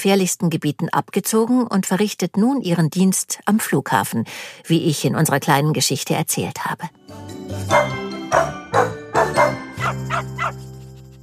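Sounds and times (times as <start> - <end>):
speech: 0.0 - 10.6
dog barking: 7.7 - 10.6.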